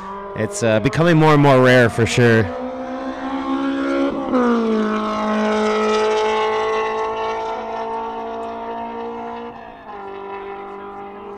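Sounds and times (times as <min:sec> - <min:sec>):
Honda race car engine screaming on track: 0:00.0 - 0:11.3
speech: 0:00.4 - 0:02.6.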